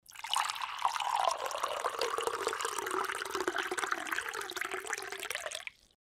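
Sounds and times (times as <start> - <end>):
tea pouring into a cup: 0.0 - 6.0.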